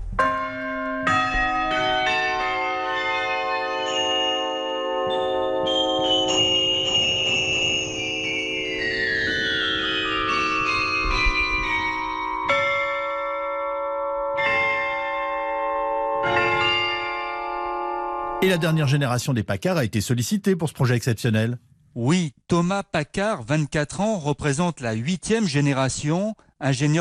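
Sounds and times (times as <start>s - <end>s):
keyboard-played church bells struck by motorized hammers: 0.2s - 19.3s
speech: 18.5s - 27.0s.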